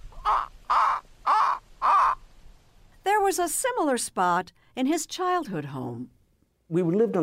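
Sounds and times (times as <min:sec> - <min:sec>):
harsh raspy bird calls at a pond: 0:00.0 - 0:02.2
speech: 0:03.3 - 0:07.2.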